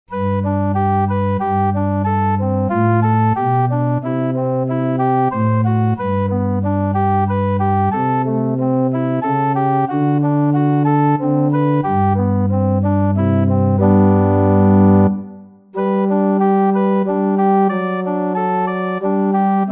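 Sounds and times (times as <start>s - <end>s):
solo bassoon playing: 0.1s - 19.7s.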